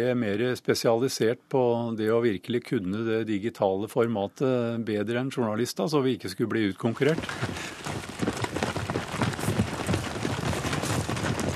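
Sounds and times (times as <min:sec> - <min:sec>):
speech: 0:00.0 - 0:07.8
footsteps running down a hard corridor floor: 0:06.9 - 0:11.5.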